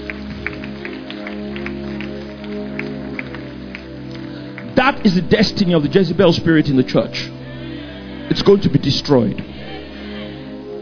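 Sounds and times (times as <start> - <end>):
crowd clapping as a clap offering to the Lord: 0.0 - 5.8
sustained musical tones humming: 0.0 - 10.8
speech: 4.9 - 7.4, 8.3 - 9.6.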